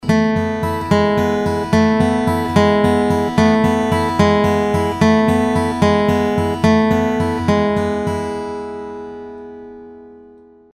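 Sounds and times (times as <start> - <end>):
crosspicking on strings: 0.0 - 10.6.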